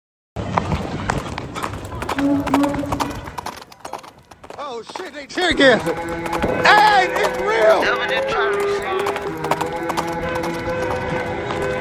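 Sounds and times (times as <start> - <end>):
horse hooves clip-clopping on a hard surface: 0.4 - 11.8
speech: 2.2 - 3.0, 4.7 - 9.9
voices: 4.8 - 10.2.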